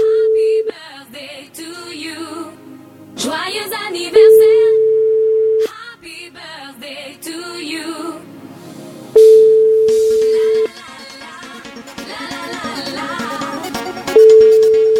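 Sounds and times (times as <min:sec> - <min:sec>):
telephone busy signal beeps: 0:00.0 - 0:00.7, 0:04.2 - 0:05.7, 0:09.2 - 0:10.7, 0:14.2 - 0:14.9.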